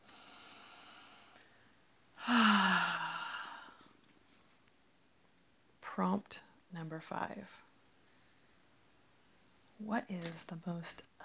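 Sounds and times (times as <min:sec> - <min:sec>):
deep breath: 0:00.0 - 0:04.0
speech: 0:06.0 - 0:07.7, 0:09.8 - 0:11.2.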